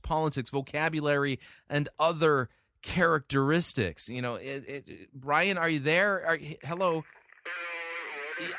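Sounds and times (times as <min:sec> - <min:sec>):
speech: 0:00.1 - 0:07.6, 0:08.4 - 0:08.5
harsh crackling phone-line static: 0:06.7 - 0:08.5
garbled buzzy voice-like tone: 0:06.9 - 0:08.5.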